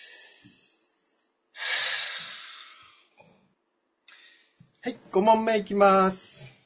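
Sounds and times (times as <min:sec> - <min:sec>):
deep breath during a relaxation break: 0:00.0 - 0:03.4, 0:04.1 - 0:04.6
speech: 0:04.8 - 0:06.3.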